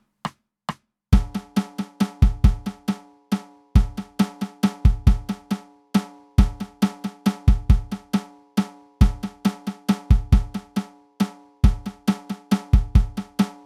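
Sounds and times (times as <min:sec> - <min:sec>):
festive drum kit playing: 0:01.1 - 0:03.0, 0:03.8 - 0:05.5, 0:06.4 - 0:08.2, 0:09.0 - 0:10.8, 0:11.6 - 0:13.6.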